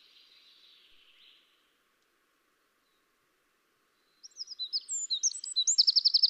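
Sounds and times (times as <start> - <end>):
Eurasian wren song: 0.0 - 1.8, 3.9 - 6.2.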